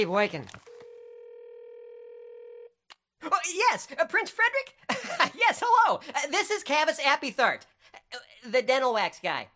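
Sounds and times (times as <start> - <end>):
speech: 0.0 - 0.6, 3.2 - 9.5
telephone ringing tone on the line: 0.6 - 2.8.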